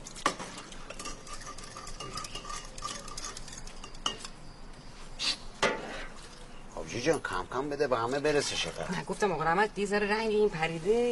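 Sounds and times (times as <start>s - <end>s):
spoon stirring in a cup or glass: 0.0s - 4.6s
speech: 7.0s - 11.0s.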